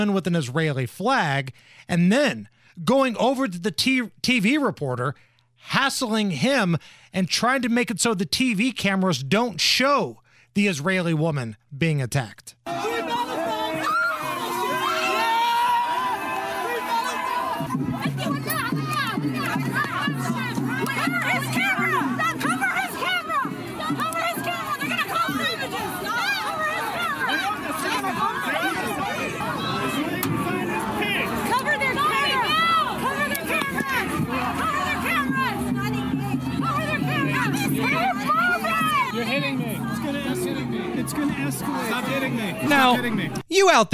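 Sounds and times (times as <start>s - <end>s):
speech: 0.0s - 13.1s, 41.2s - 43.9s
dense crowd of protesters shouting and screaming at a protest: 12.7s - 43.4s.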